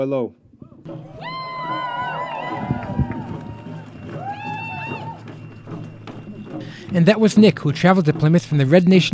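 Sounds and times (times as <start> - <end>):
speech: 0.0 - 1.8, 6.9 - 9.1
crowd shuffling outdoors: 0.4 - 8.4
large crowd voices outdoors: 0.6 - 7.5
thuds: 2.6 - 3.9.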